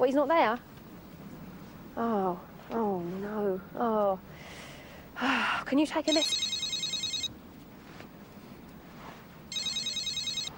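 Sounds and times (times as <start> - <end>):
speech: 0.0 - 0.7, 2.0 - 4.6, 5.2 - 6.4
low hum: 0.0 - 10.5
mobile phone call ringing trills: 6.1 - 7.3, 9.5 - 10.5.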